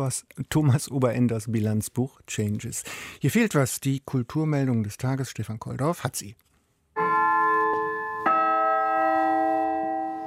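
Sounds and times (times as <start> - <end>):
speech: 0.0 - 6.5
church bells ringing: 7.0 - 10.2.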